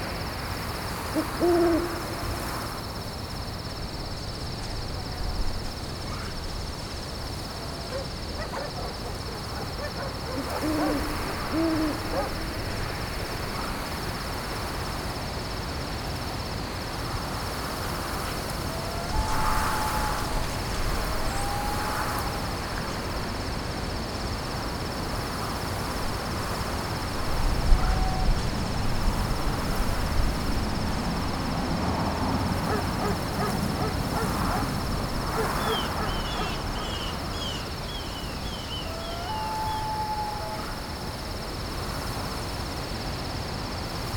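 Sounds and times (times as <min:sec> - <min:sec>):
forest ambience: 0:00.0 - 0:44.0.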